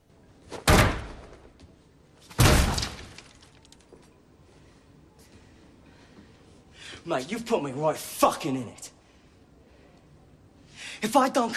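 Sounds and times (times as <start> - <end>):
fist punching a cubicle door: 0.6 - 1.2, 2.4 - 3.1
speech: 7.0 - 9.0, 11.0 - 11.5.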